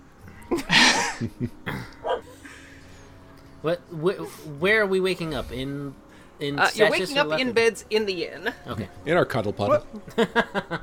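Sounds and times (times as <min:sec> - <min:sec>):
speech: 0:00.5 - 0:02.0, 0:03.6 - 0:10.8
laughter: 0:00.5 - 0:02.6, 0:09.9 - 0:10.8
dog barking and yipping: 0:02.0 - 0:02.3.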